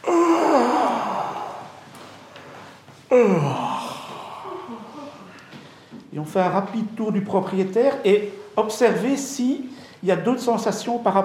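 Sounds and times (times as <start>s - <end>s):
person yawning while stretching: 0.0s - 1.8s, 3.1s - 5.4s
speech: 3.1s - 3.7s, 6.2s - 11.2s.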